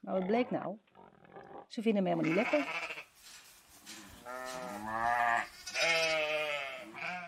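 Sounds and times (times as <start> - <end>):
speech: 0.1 - 0.9, 1.7 - 2.9, 4.3 - 5.5
sheep bleating: 2.1 - 3.1, 3.9 - 7.2.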